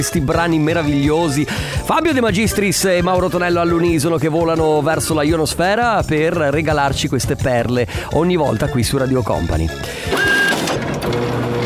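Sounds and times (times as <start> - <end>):
speech: 0.0 - 10.2
printer printing with whir, whine and clicking paper feed: 10.1 - 11.6.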